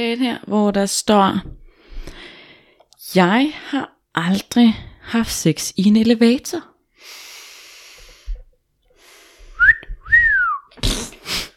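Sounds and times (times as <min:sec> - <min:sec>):
speech: 0:00.0 - 0:02.2, 0:03.1 - 0:07.2
woman giving a two-part whistle: 0:09.6 - 0:10.7.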